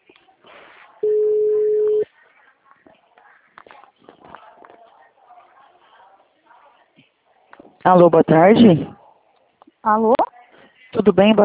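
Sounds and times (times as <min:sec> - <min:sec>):
faint scattered sounds: 0:00.0 - 0:11.4
ringback tone of an outgoing telephone call: 0:01.0 - 0:02.0
speech: 0:07.8 - 0:09.0, 0:09.8 - 0:10.2, 0:11.1 - 0:11.4.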